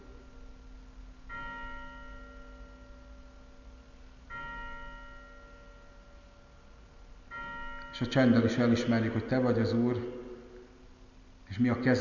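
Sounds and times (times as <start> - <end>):
church bell tolling: 0.0 - 0.7, 1.3 - 10.5
speech: 8.0 - 10.2, 11.6 - 11.9.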